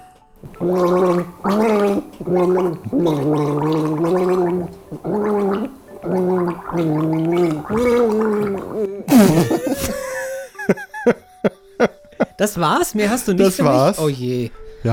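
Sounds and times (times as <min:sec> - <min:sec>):
person gargling a tune: 0:00.4 - 0:09.5
speech: 0:00.5 - 0:10.0, 0:10.7 - 0:11.2, 0:12.4 - 0:14.9
laughter: 0:09.1 - 0:12.4.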